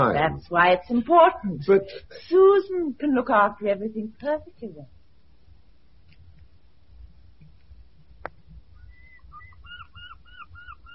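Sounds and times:
speech: 0.0s - 5.0s
high arching bird calls: 8.8s - 10.9s.

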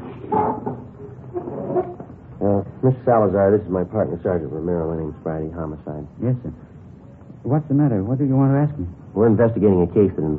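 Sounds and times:
chairs pulled up across a hard kitchen floor: 0.0s - 2.2s
speech: 2.5s - 6.7s, 7.4s - 10.3s.

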